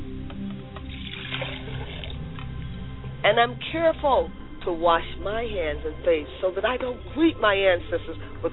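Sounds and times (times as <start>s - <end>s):
low hum: 0.0s - 8.5s
water poured out as a libation during a prayer: 0.8s - 2.7s
speech: 3.2s - 8.5s.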